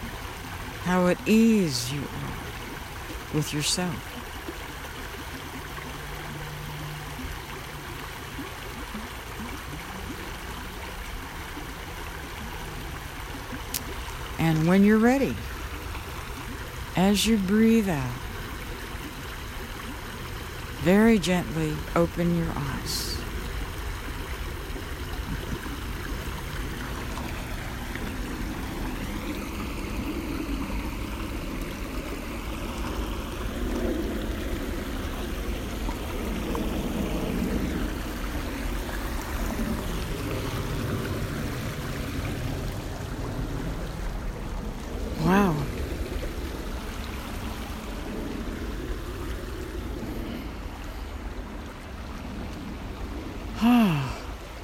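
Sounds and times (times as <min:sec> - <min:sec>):
continuous rushing water: 0:00.0 - 0:54.6
speech: 0:00.8 - 0:02.5, 0:03.3 - 0:04.2, 0:14.4 - 0:15.5, 0:17.0 - 0:18.2, 0:20.8 - 0:23.2.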